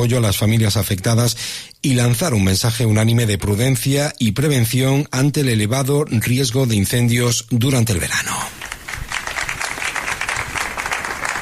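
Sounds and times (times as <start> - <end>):
speech: 0.0 - 8.6
crowd applauding after a minute of silence: 8.5 - 11.3.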